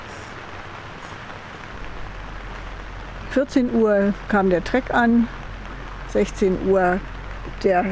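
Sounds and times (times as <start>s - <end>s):
steady rain falling: 0.0s - 7.8s
speech: 3.4s - 5.4s, 6.1s - 7.8s.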